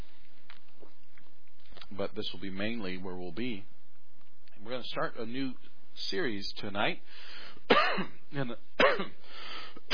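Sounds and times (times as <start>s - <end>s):
speech: 2.0s - 3.8s, 4.6s - 9.9s
man coughing: 7.7s - 8.2s, 8.8s - 9.2s.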